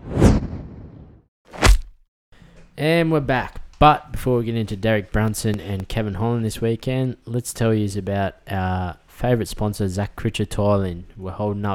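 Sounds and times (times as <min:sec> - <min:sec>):
booming whoosh-punch hit with rumble tail: 0:00.0 - 0:01.9
speech: 0:02.8 - 0:11.7.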